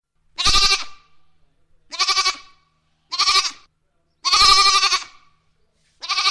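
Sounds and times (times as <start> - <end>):
goat bleating: 0.4 - 1.2, 1.9 - 5.3, 6.0 - 6.2.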